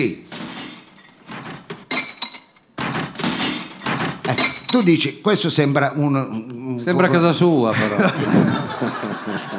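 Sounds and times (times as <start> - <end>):
speech: 0.0 - 0.2, 4.7 - 9.5
garbage bins being emptied at night in Turin: 0.4 - 4.9
glass clinking: 1.9 - 2.8, 3.6 - 4.9
laughter: 7.6 - 9.5.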